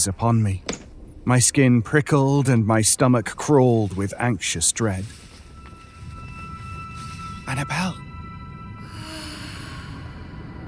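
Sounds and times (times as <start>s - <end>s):
speech: 0.0s - 5.3s, 7.5s - 8.0s
soft breathy moan in the darkness: 8.8s - 10.6s.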